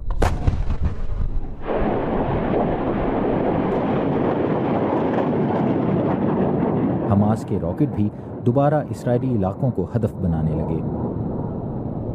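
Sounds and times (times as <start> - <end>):
Israeli artillery shells exploding in Gaza: 0.0 - 8.6
speech: 7.3 - 11.0.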